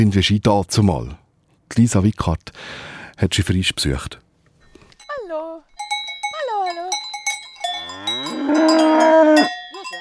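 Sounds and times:
speech: 0:00.0 - 0:04.2
cowbell clanking: 0:05.0 - 0:09.9
cow mooing on a farm: 0:07.7 - 0:09.8
faint farmyard cattle sounds: 0:07.7 - 0:09.9.

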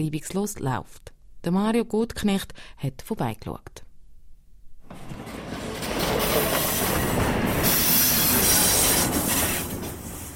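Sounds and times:
speech: 0:00.0 - 0:03.8
freight train wagons from Basel rumbling into a shunting yard in Switzerland: 0:04.8 - 0:10.3
faint high squeal of freight train wheels: 0:04.9 - 0:10.3.

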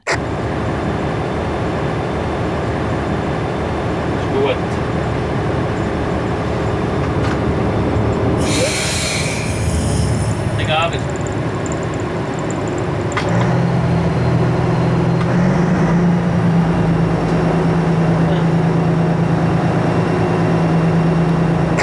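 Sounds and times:
train rumbling at Frutigen railway station: 0:00.0 - 0:21.8
sharp hiss of released air: 0:08.4 - 0:11.3.

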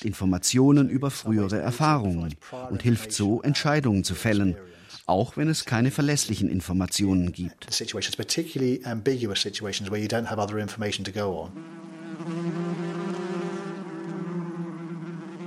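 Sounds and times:
speech: 0:00.0 - 0:12.8
bee buzzing with a droning hum: 0:11.5 - 0:15.4.

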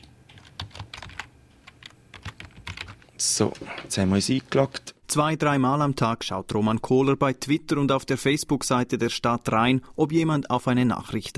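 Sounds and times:
typing on a computer keyboard: 0:00.3 - 0:03.1
speech: 0:03.2 - 0:11.3.

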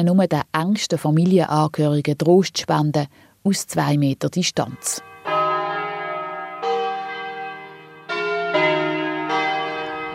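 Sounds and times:
speech: 0:00.0 - 0:05.1
church bells ringing: 0:04.8 - 0:10.1.

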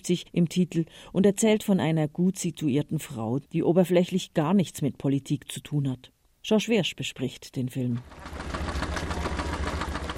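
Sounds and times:
speech: 0:00.0 - 0:08.6
mechanical paint mixer whirring in a paint pot: 0:08.0 - 0:10.1.

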